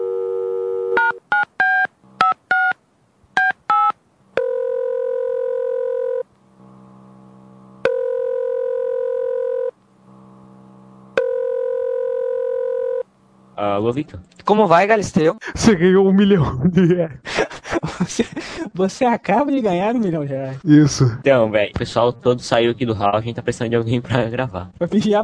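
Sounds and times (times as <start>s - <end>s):
telephone dial tone: 0.0s - 1.2s, 4.4s - 6.2s, 7.8s - 9.7s, 11.2s - 13.1s
telephone ringing tones: 0.0s - 2.8s, 3.4s - 6.2s, 7.8s - 9.7s, 11.2s - 13.1s
speech: 13.7s - 17.3s, 18.0s - 25.2s.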